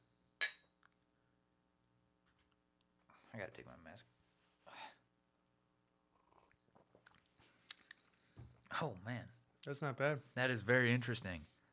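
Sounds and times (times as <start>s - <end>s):
two glasses clinking in a toast before tasting a drink: 0.4s - 0.8s
speech: 3.3s - 4.2s, 8.8s - 11.5s.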